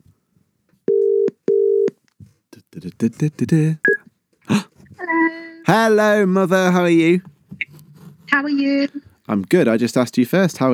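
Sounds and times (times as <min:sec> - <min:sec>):
telephone dialing and ringing tone: 0:00.9 - 0:01.9
speech: 0:03.0 - 0:03.9, 0:05.7 - 0:07.3, 0:08.3 - 0:10.7.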